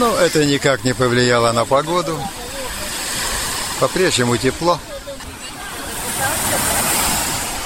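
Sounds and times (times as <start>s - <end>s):
speech: 0.0s - 2.4s, 3.8s - 4.9s
people splashing in sea waves: 0.0s - 7.6s
sea waves washing: 0.0s - 7.6s
faint indistinct voices: 1.6s - 7.6s.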